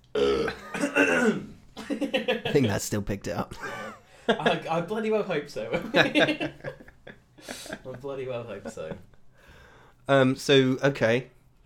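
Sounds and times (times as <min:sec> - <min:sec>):
person burping: 0:00.0 - 0:01.6
speech: 0:02.2 - 0:06.8, 0:07.4 - 0:09.1, 0:10.1 - 0:11.4
laughter: 0:03.5 - 0:04.9, 0:05.6 - 0:09.1.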